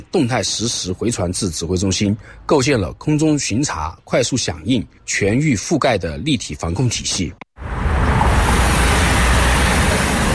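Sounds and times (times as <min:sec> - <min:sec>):
speech: 0:00.0 - 0:07.8
heavy expressway traffic roar with engine and tyre noise: 0:07.6 - 0:10.3.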